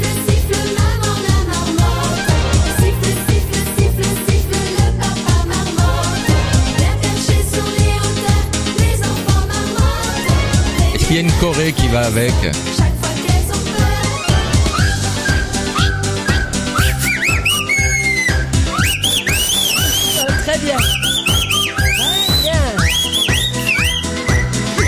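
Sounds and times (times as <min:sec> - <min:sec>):
loud pop music with a steady thumping beat: 0:00.0 - 0:24.8
speech: 0:11.2 - 0:12.8
audience in a hall whistling along to a song: 0:14.0 - 0:24.8.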